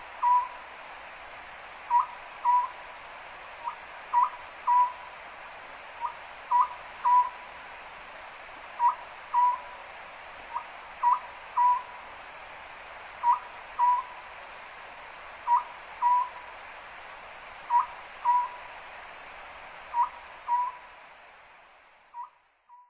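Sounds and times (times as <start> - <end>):
steady hiss: 0.0 - 22.7
Oriental scops owl hooting: 0.2 - 0.6, 1.9 - 2.8, 3.6 - 5.1, 6.0 - 7.4, 8.8 - 9.7, 10.5 - 11.9, 13.2 - 14.1, 15.5 - 16.4, 17.7 - 18.6, 19.9 - 20.8, 22.2 - 22.8.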